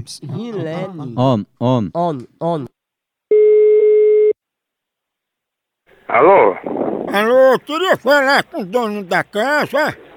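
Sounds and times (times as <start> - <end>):
speech: 0.0 - 2.8, 6.1 - 10.0
ringback tone on an outgoing phone call: 3.3 - 4.4.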